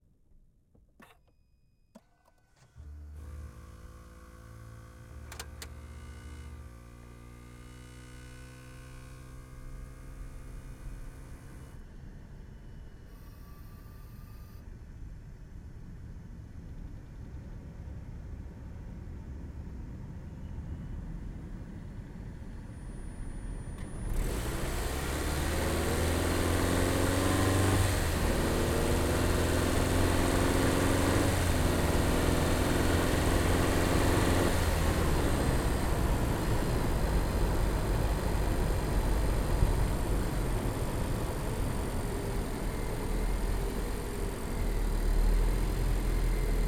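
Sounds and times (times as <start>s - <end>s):
2018 Volvo XC90 hybrid driving, onboard recording: 23.6s - 46.5s.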